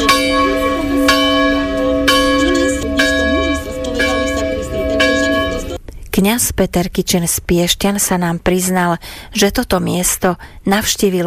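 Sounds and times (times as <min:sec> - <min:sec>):
church bells ringing at San Giovanni Rotondo pilgrimage site in Italy: 0:00.0 - 0:05.8
faint murmur of voices: 0:00.0 - 0:05.8
speech: 0:06.2 - 0:11.2.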